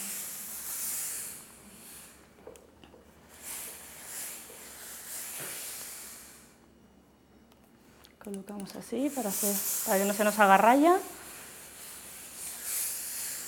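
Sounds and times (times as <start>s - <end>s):
steam iron releasing hissing steam while ironing sleeves: 0.0s - 2.2s, 3.3s - 6.6s, 9.0s - 13.4s
speech: 8.2s - 11.2s.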